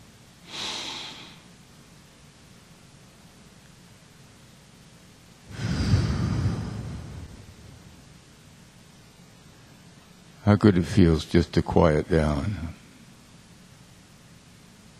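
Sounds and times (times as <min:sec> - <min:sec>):
deep breaths during a guided relaxation: 0:00.5 - 0:01.5, 0:05.5 - 0:08.1
speech: 0:10.5 - 0:12.8.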